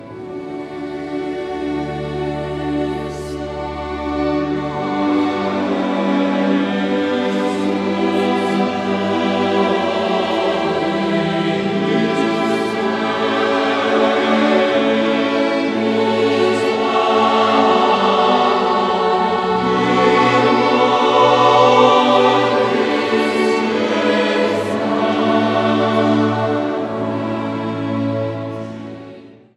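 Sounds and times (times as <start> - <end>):
orchestra playing: 0.0 - 29.4
choir singing: 0.0 - 29.5.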